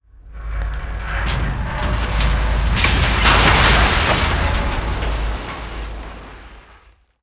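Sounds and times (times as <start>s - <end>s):
structural collapse: 0.1s - 7.2s.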